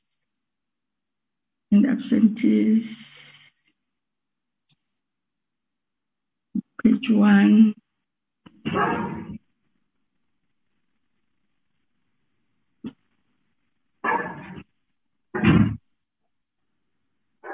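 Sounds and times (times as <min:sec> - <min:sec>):
speech: 0:01.7 - 0:03.3, 0:06.9 - 0:07.8, 0:08.6 - 0:09.2
dogs barking: 0:08.7 - 0:09.4, 0:14.0 - 0:14.6.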